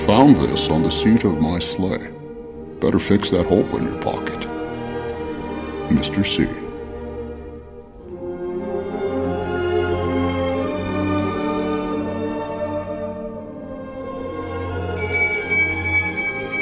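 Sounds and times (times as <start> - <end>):
sustained orchestral music: 0.0 - 16.6
speech: 0.2 - 2.2, 2.8 - 4.5, 5.9 - 6.6
small bell tinkling: 15.0 - 16.6.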